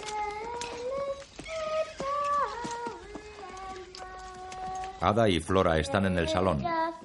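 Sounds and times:
ridden horse hooves clip-clopping: 0.0 - 5.1
speech: 5.0 - 6.8.

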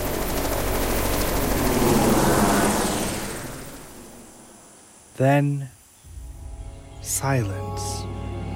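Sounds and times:
helicopter rotor and engine lifting off and flying away: 0.0 - 4.8
speech: 5.2 - 5.8, 7.0 - 8.1.

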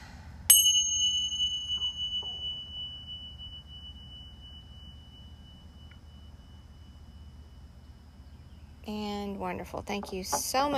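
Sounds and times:
single bright bell strike: 0.5 - 6.8
speech: 8.9 - 10.7.

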